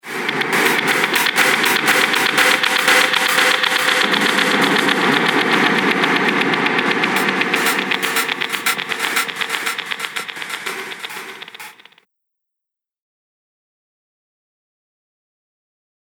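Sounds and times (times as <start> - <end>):
dark horror impact: 0.1 - 11.9.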